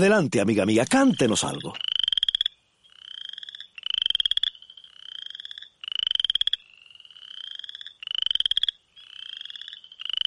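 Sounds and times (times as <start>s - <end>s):
speech: 0.0s - 1.9s
western chorus frog calling: 0.0s - 10.2s.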